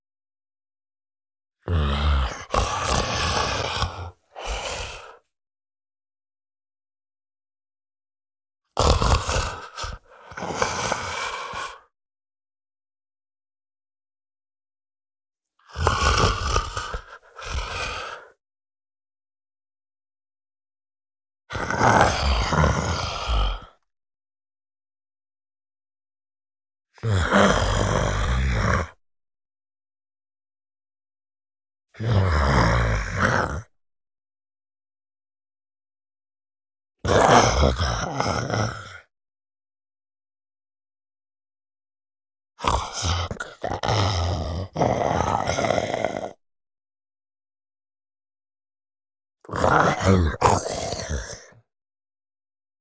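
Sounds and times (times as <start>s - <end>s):
huge calm wandering male zombie breathing: 1.7s - 5.2s, 8.8s - 11.9s, 15.7s - 18.4s, 21.6s - 23.8s, 27.2s - 28.9s, 37.2s - 39.0s, 42.6s - 46.4s, 49.5s - 51.6s
huge male zombie grunting and growling: 1.7s - 5.2s, 8.8s - 11.8s, 15.7s - 18.3s, 21.5s - 23.8s, 27.0s - 29.0s, 32.0s - 33.7s, 37.1s - 39.0s, 42.6s - 46.4s, 49.5s - 51.6s.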